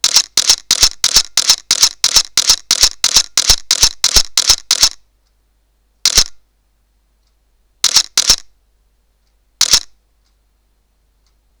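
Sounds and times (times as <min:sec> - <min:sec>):
Sony Alpha DSLR-A850 camera shutter in continuous shooting: 0:00.0 - 0:05.0, 0:06.0 - 0:06.4, 0:07.8 - 0:08.5, 0:09.6 - 0:10.0.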